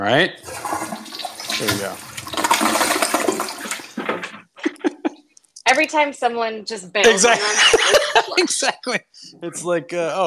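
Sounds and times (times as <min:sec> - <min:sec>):
speech: 0:00.0 - 0:00.8, 0:01.6 - 0:02.1, 0:05.8 - 0:10.2
short gurgling bursts of draining toilet: 0:00.4 - 0:04.6
toilet flush sound effect: 0:00.4 - 0:04.6
laughter: 0:04.6 - 0:05.2, 0:07.0 - 0:10.2.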